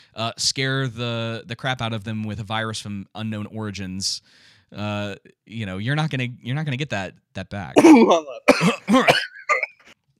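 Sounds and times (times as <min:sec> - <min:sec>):
speech: 0:00.2 - 0:09.4
person coughing from chest tickle: 0:07.8 - 0:09.9
raspy, wheezy throat clearing: 0:07.8 - 0:09.9.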